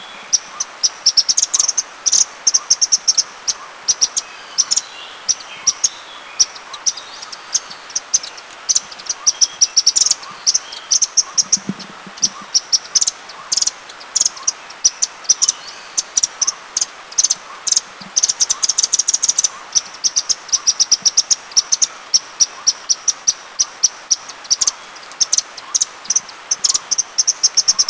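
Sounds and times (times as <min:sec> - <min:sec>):
golden babbler chatter in Eaglenest India: 0:00.2 - 0:27.8.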